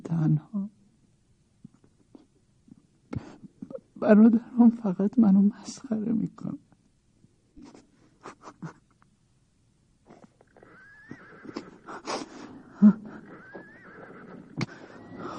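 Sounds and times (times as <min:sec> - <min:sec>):
speech: 0:00.2 - 0:00.8, 0:04.0 - 0:06.7
saddled golden horse neighing: 0:10.1 - 0:15.3.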